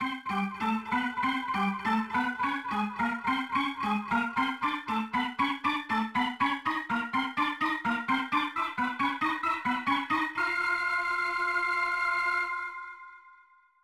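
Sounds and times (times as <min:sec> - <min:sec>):
organ background music: 0:00.0 - 0:13.2.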